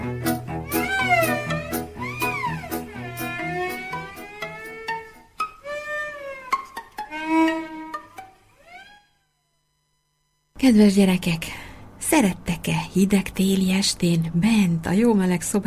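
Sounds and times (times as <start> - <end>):
busy musical backing with steady low bass and sharp percussive clicks: 0.0 - 5.3
cat meowing: 0.0 - 6.6
speech: 10.6 - 15.6.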